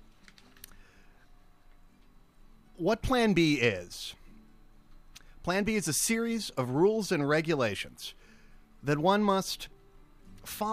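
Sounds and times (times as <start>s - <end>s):
low quiet hum: 0.0s - 10.7s
soft computer keyboard keys clicking: 0.2s - 0.8s
speech: 2.8s - 4.2s, 5.4s - 8.2s, 8.8s - 9.7s, 10.4s - 10.7s.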